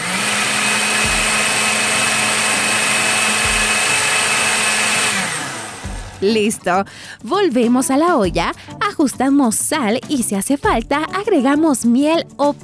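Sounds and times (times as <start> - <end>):
blender processing cooked tomato sauce: 0.0 - 6.2
speech: 6.2 - 12.6.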